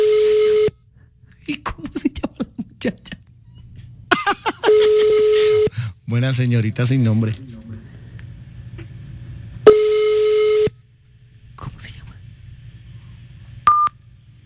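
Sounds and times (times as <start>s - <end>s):
steady buzzy telephone tone after a call hung up: 0.0s - 0.8s, 4.6s - 5.8s, 9.6s - 10.8s, 13.6s - 14.1s
laughter: 1.4s - 3.2s, 4.1s - 5.7s
speech: 2.8s - 3.2s, 6.1s - 7.5s.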